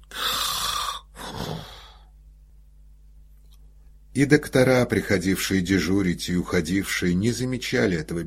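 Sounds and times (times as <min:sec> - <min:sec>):
voice imitating a man snoring while asleep on a couch: 0:00.0 - 0:02.0
speech: 0:04.2 - 0:08.2.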